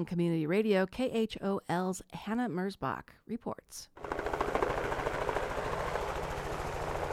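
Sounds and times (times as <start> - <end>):
speech: 0.0 - 4.3
helicopter flying overhead: 4.0 - 7.1.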